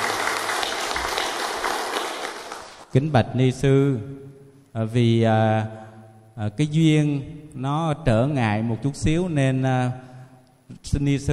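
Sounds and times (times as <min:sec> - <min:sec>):
temple congregation applauding to welcome a Buddhist nun: 0:00.0 - 0:02.9
speech: 0:02.9 - 0:05.8, 0:06.4 - 0:10.1, 0:10.7 - 0:11.3.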